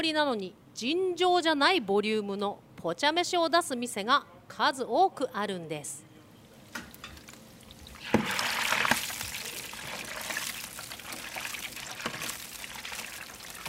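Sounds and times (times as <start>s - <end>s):
speech: 0.0s - 6.0s
whole spiny lobster deep-frying in oil in Fukushima Japan: 6.6s - 13.6s.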